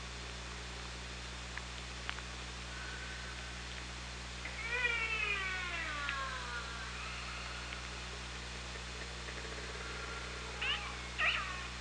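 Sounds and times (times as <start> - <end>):
constant low hum: 0.0 - 11.7
Orca call recorded with a hydrophone: 4.4 - 7.8, 10.4 - 11.7.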